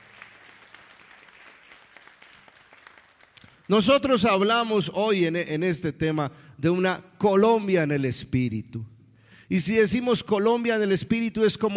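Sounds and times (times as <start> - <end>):
audience applause: 0.0 - 4.0
speech: 3.7 - 8.9, 9.5 - 11.7.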